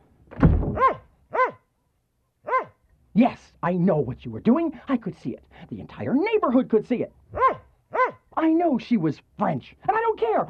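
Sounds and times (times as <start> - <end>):
dull thump: 0.3 - 1.0
dog barking: 0.8 - 1.7, 2.4 - 2.8, 7.3 - 8.3
speech: 3.2 - 7.5, 8.4 - 10.4.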